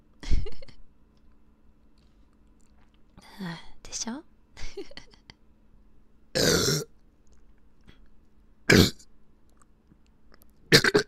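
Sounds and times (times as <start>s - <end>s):
speech: 3.4s - 5.1s
person burping: 6.4s - 6.9s, 8.7s - 9.0s, 10.7s - 11.0s.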